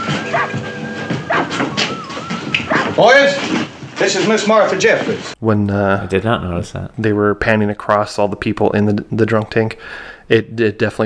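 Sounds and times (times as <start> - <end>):
dogs whimpering: 0.0 - 3.5
several dogs barking and yipping: 0.0 - 4.0
speech: 3.0 - 11.0.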